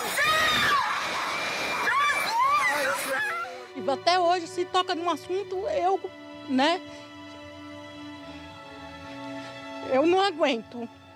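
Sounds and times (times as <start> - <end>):
constant rushing watery noise: 0.0 - 3.7
people screaming and shouting during a landslide: 0.0 - 3.7
speech: 3.9 - 7.1, 9.9 - 11.0.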